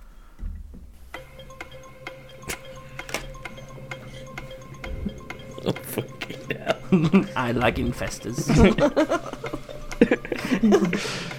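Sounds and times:
countdown clock ticking during a word puzzle game: 0:01.1 - 0:11.3
laughter: 0:04.8 - 0:11.3
speech: 0:06.9 - 0:11.3.

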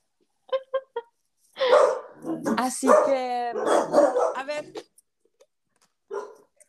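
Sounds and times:
dog barking: 0:01.6 - 0:04.5, 0:06.1 - 0:06.5
speech: 0:02.4 - 0:04.9.

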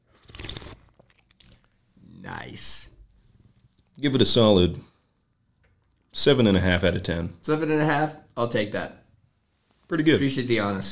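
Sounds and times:
slurping sip of a drink: 0:00.0 - 0:01.8
speech: 0:02.2 - 0:02.9, 0:04.0 - 0:04.9, 0:06.2 - 0:09.0, 0:09.9 - 0:10.8.

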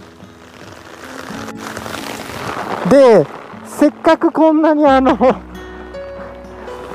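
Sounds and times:
heavy rain falling: 0:00.0 - 0:05.6
speech: 0:02.8 - 0:05.5.

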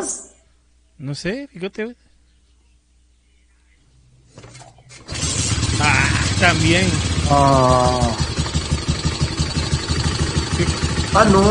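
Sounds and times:
speech: 0:01.0 - 0:02.1, 0:06.4 - 0:08.2, 0:10.6 - 0:11.4
motorcycle engine idling outside: 0:04.4 - 0:11.4.

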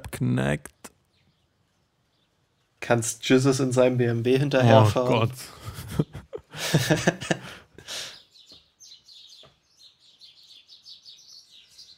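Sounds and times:
speech: 0:00.2 - 0:00.8, 0:02.8 - 0:08.1
birds calling back and forth with chirps and squawks: 0:00.8 - 0:06.6, 0:07.2 - 0:11.9
laughter: 0:04.4 - 0:08.1.

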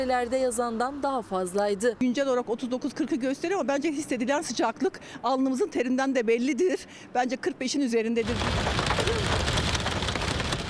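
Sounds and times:
speech: 0:00.0 - 0:09.5
rain falling: 0:08.2 - 0:10.6.

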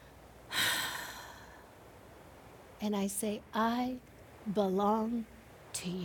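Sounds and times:
slow breathy exhale during a breathing exercise: 0:00.0 - 0:01.7
speech: 0:02.8 - 0:06.0.

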